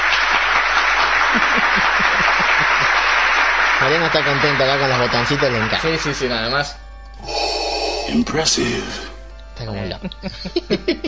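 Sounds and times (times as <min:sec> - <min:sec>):
applause: 0:00.0 - 0:06.4
laughter: 0:01.0 - 0:05.7, 0:09.9 - 0:11.0
speech: 0:03.8 - 0:07.4, 0:08.1 - 0:11.0.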